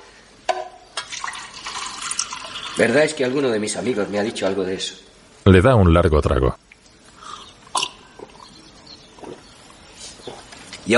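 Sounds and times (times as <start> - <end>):
wine being poured into a cup: 1.0 - 2.9
speech: 2.8 - 6.6.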